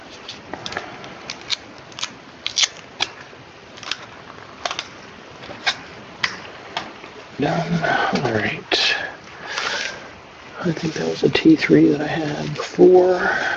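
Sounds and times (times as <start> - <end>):
adhesive tape being wrapped around a cup: 0.2 - 4.9
speech: 7.4 - 8.8, 10.6 - 13.5.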